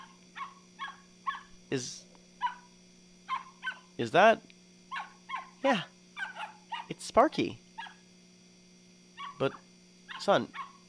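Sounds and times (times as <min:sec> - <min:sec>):
dog barking in high yips: 0:00.0 - 0:01.6, 0:02.4 - 0:02.7, 0:03.3 - 0:03.9, 0:04.9 - 0:05.6, 0:06.2 - 0:07.0, 0:07.8 - 0:08.0, 0:09.2 - 0:10.8
faint steady hum: 0:00.0 - 0:10.8
speech: 0:01.7 - 0:02.1, 0:04.0 - 0:04.5, 0:05.6 - 0:05.9, 0:07.0 - 0:07.6, 0:09.4 - 0:09.6, 0:10.2 - 0:10.6.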